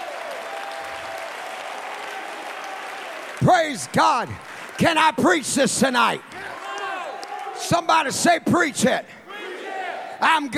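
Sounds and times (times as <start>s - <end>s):
church audience clapping hands in dense applause: 0.0s - 7.6s
speech: 3.4s - 6.5s, 7.6s - 9.2s, 10.2s - 10.5s.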